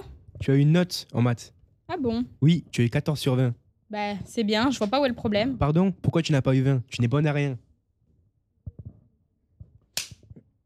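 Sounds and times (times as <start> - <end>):
speech: 0.4 - 7.6
father slapping his daughter across the face: 10.0 - 10.2.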